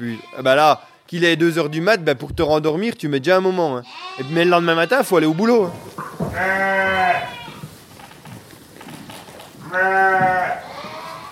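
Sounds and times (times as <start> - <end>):
ewes and lambs bleating on a mountain sheep farm in La Bresse: 0.0 - 1.0, 3.8 - 5.6, 6.3 - 7.6, 9.6 - 11.2
speech: 0.0 - 7.4
farmyard murmur and animal noise: 3.8 - 11.2.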